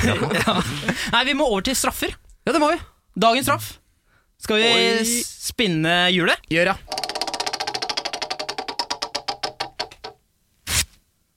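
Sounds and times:
laughter: 0.0s - 1.1s
speech: 0.0s - 3.8s, 4.4s - 7.0s
rapid clicks: 6.9s - 10.2s
sheet of toilet paper tearing: 10.6s - 11.0s.

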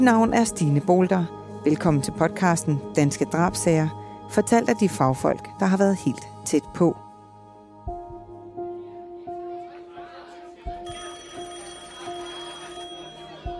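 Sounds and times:
speech: 0.0s - 7.0s
telephone ringing with bright sustained bell tone: 10.9s - 13.5s.

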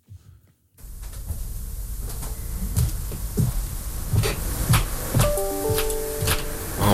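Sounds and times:
faint tonal whine: 0.8s - 6.9s
steady low rumble and hiss: 0.8s - 6.9s
thuds and knocks from upstairs neighbour: 1.0s - 6.5s.

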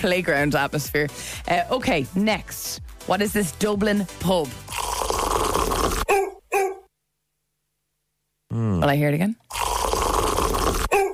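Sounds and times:
speech: 0.0s - 4.9s, 8.6s - 9.7s
noise: 4.6s - 11.1s
dog barking: 6.0s - 6.9s, 10.9s - 11.1s
dog growling and whining: 10.8s - 11.1s.

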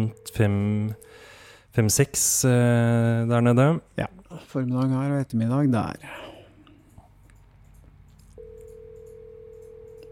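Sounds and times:
speech: 0.0s - 6.3s
electronic ringback tone of an outgoing phone call: 8.4s - 10.0s.

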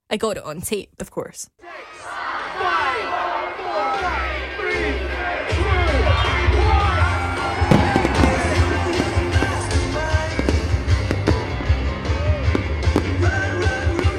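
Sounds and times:
speech: 0.1s - 3.1s
large outdoor crowd at a city Christmas lights switch-on cheering and shouting: 1.6s - 14.1s
fireworks bangs: 6.9s - 14.1s.

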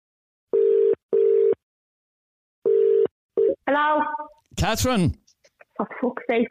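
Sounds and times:
telephone ringback tone through the earpiece: 0.5s - 1.6s, 2.7s - 3.5s
speech: 3.7s - 5.2s, 5.8s - 6.4s.

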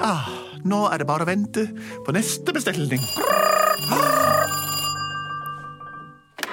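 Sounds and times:
speech: 0.1s - 4.2s
telephone ringing with electronic bell-like tone: 3.0s - 6.4s.

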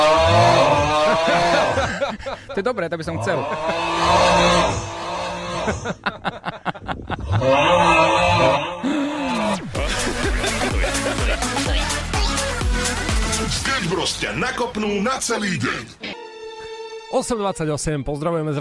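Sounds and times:
many men snoring while sleeping together in a heap: 0.0s - 2.3s, 3.2s - 6.2s, 7.2s - 13.5s
laughter: 0.5s - 4.2s, 5.4s - 7.7s, 9.0s - 12.5s
speech: 1.3s - 5.0s, 5.6s - 9.0s, 13.8s - 16.2s, 17.1s - 18.5s.

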